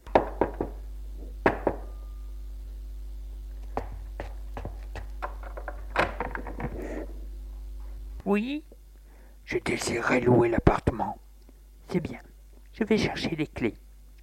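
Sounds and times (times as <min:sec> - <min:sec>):
steady low hum: 0:00.0 - 0:14.2
knocking on the door of a concierge's lodge: 0:00.1 - 0:00.8
speech: 0:08.3 - 0:08.7, 0:09.5 - 0:11.2, 0:11.9 - 0:13.8.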